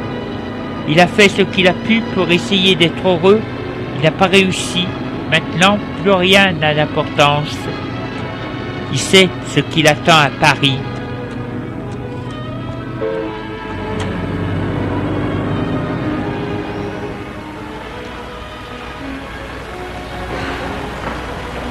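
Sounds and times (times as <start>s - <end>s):
train wheels and carriages rumbling arriving at a railway station: 0.0s - 21.7s
speech: 0.8s - 7.9s, 8.9s - 11.0s
faint train clanks: 20.1s - 21.7s.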